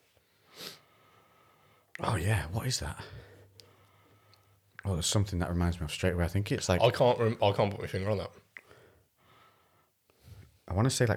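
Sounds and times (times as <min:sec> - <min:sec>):
person sniffing a glass of rum: 0:00.4 - 0:00.9
speech: 0:02.0 - 0:03.3, 0:04.9 - 0:08.4, 0:10.7 - 0:11.1.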